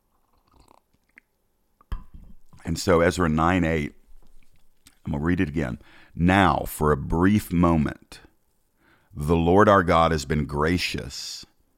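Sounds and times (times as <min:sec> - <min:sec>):
person sipping hot coffee: 0:00.0 - 0:01.3
swallow: 0:00.0 - 0:01.3
speech: 0:02.6 - 0:04.0, 0:05.0 - 0:08.2, 0:09.2 - 0:11.5.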